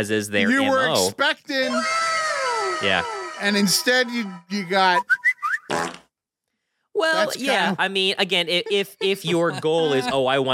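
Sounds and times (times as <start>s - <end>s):
speech: 0.0s - 2.1s, 2.8s - 6.0s, 7.0s - 10.5s
laughter: 0.4s - 1.1s, 2.8s - 4.8s, 7.2s - 7.8s, 8.4s - 10.5s
fart: 5.5s - 6.1s.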